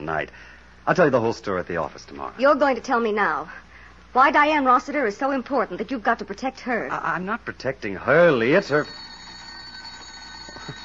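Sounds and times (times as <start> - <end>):
speech: 0.0 - 9.1
telephone ringing with a steady trill: 8.3 - 10.8.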